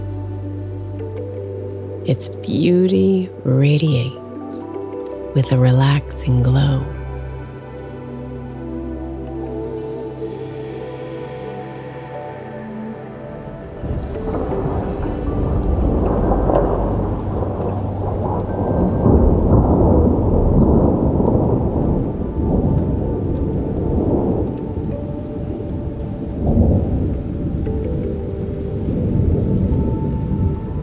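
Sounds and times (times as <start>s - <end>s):
speech: 2.1s - 4.7s, 5.3s - 6.9s
low thunder rumbling: 13.3s - 30.8s
heavy rain drumming on a roof: 13.8s - 30.8s.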